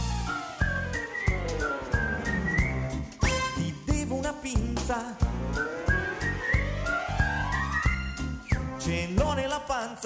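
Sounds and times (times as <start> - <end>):
steady musical accompaniment with regular percussive beats: 0.0 - 9.4
person whistling a bright wandering melody: 0.2 - 3.8, 5.5 - 8.7
speech: 4.5 - 5.7, 9.1 - 10.0.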